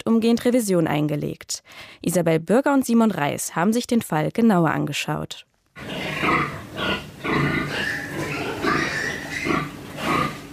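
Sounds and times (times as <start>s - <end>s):
speech: 0.1s - 7.9s
pigs grunting and snorting in a crowded pig-fattening barn in Saxony-Anhalt: 5.8s - 10.5s.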